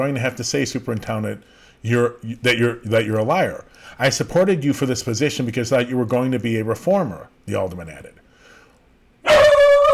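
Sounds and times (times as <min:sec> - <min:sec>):
speech: 0:00.0 - 0:08.2
dog letting out a drawn-out strained bark: 0:09.3 - 0:09.9.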